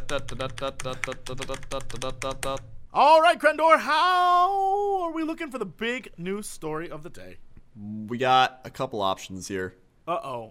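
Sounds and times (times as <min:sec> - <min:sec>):
voice imitating typing on a typewriter with mouth clicks: 0:00.0 - 0:02.7
speech: 0:00.1 - 0:10.4.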